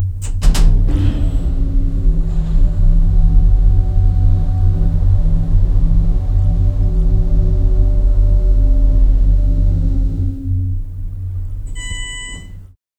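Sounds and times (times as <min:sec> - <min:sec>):
modern elevator: 0:00.0 - 0:12.8.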